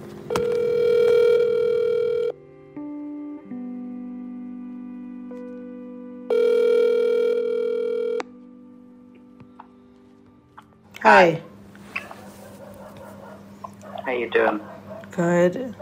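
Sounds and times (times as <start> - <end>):
phone line ringback tones: 0.3 - 2.4, 6.3 - 8.4
speech: 11.1 - 11.4, 14.2 - 15.7.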